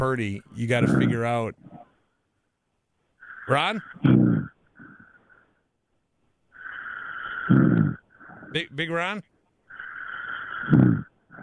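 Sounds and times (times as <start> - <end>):
speech: 0.0 - 1.7, 3.5 - 4.3, 7.5 - 9.3, 10.6 - 11.4
person snoring with a whistling nasal inhale and rough rumble: 3.2 - 5.2, 6.6 - 8.6, 9.7 - 11.4.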